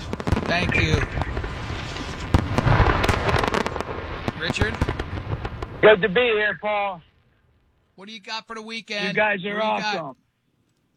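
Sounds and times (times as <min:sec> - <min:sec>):
steady low rumble: 0:00.0 - 0:06.7
fireworks bangs and crackling bursts from a spectacular show: 0:00.0 - 0:07.8
speech: 0:00.5 - 0:01.3, 0:04.4 - 0:05.0, 0:05.8 - 0:07.1, 0:08.0 - 0:10.2.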